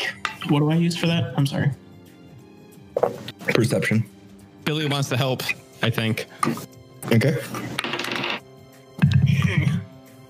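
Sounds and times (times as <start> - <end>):
speech: 0.4 - 1.8, 3.0 - 7.9
dice rolling in a dice tray: 7.8 - 8.4.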